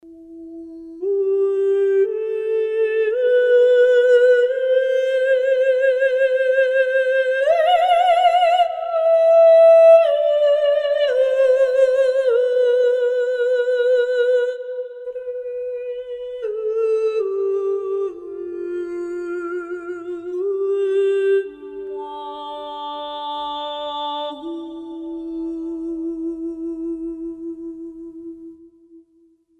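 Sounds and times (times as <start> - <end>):
ethereal female solo voice: 0.1 - 28.6.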